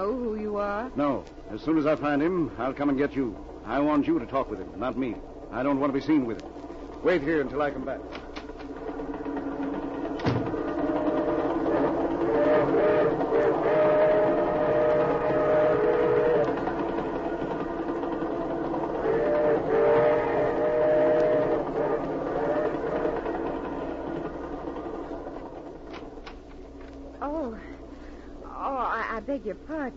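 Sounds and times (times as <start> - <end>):
speech: 0.0 - 8.2
moving train rumbling: 0.0 - 29.9
train whistle blasts: 10.5 - 17.5, 18.8 - 23.9.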